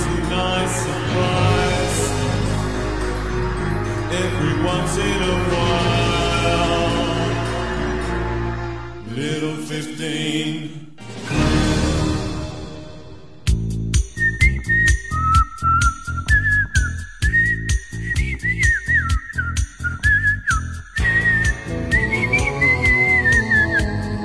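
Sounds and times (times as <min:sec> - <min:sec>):
steady rhythmic music backing: 0:00.0 - 0:09.1, 0:11.0 - 0:24.2
speech: 0:04.2 - 0:06.8, 0:09.2 - 0:11.1
person whistling a wandering tune: 0:14.0 - 0:24.2.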